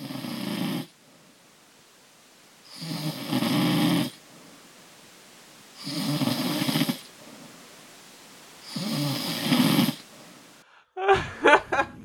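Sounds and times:
person snoring loudly and raspingly: 0.0 - 1.0, 2.7 - 4.2, 5.8 - 7.5, 8.6 - 10.1
quiet breathing: 0.0 - 11.0
laughter: 11.0 - 12.0.

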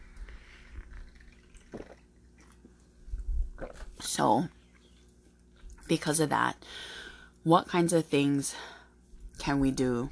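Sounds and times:
person sipping coffee: 0.2 - 2.1
speech: 4.1 - 4.6, 5.9 - 8.7, 9.4 - 10.0.

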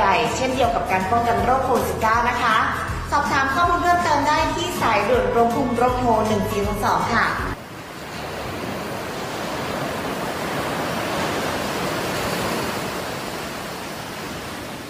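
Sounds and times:
speech: 0.2 - 7.5
ocean surf breaking on a white sand beach: 7.6 - 14.8.

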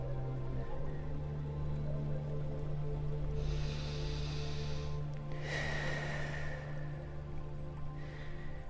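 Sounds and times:
low steady humming drone: 0.0 - 8.6
slow deep breaths blown out through the mouth in a breathing exercise: 3.4 - 7.1.

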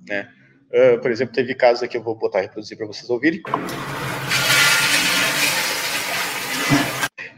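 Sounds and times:
speech: 0.1 - 4.4
toilet flushing in a loud rush of water: 3.5 - 7.2.

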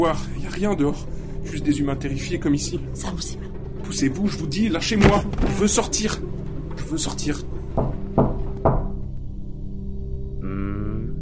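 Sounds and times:
speech: 0.0 - 7.9
low droning musical background: 0.0 - 11.1
knocking on a door: 4.8 - 9.1.

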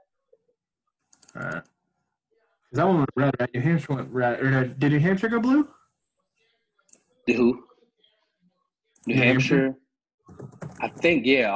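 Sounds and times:
computer mouse clicking: 1.0 - 1.7
speech: 2.7 - 5.8, 7.2 - 7.7, 9.0 - 11.5.

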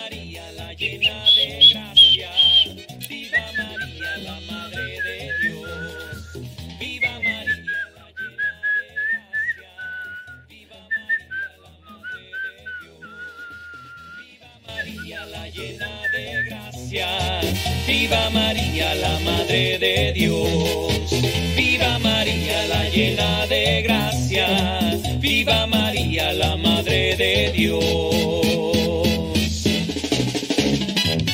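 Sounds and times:
person whistling a melody with trills: 0.0 - 16.7
steady musical accompaniment: 0.0 - 31.3.

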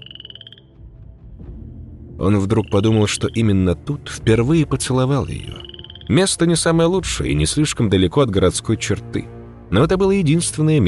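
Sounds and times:
frog croaking in a reed thicket: 0.0 - 0.8, 2.2 - 3.8, 5.3 - 6.5
speech: 2.2 - 10.8.

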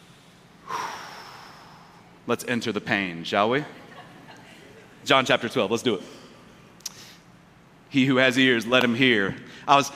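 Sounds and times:
deep breath: 0.0 - 2.1
speech: 2.3 - 3.8, 5.0 - 6.2, 7.9 - 9.9
laughter: 3.6 - 5.1.

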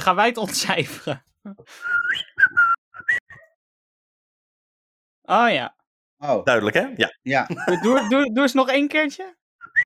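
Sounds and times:
speech: 0.0 - 2.6, 5.3 - 9.8
person whistling in a whistled language: 1.7 - 3.6
laughter: 7.5 - 8.3.

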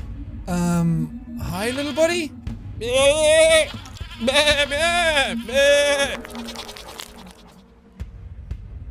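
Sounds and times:
speech: 0.5 - 6.7
ghost goat bleating: 1.4 - 2.2, 2.9 - 6.8
quiet rustling: 3.7 - 7.6.

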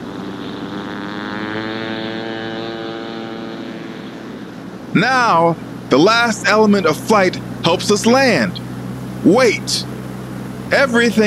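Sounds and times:
airplane engine drone thrusting the plane forward: 0.0 - 11.2
speech: 5.0 - 8.6, 9.2 - 9.9, 10.7 - 11.2.

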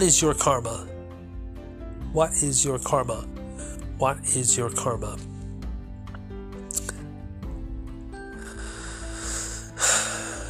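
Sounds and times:
speech: 0.0 - 0.9, 2.1 - 3.4, 4.0 - 5.3
heavy breathing: 8.2 - 10.4.

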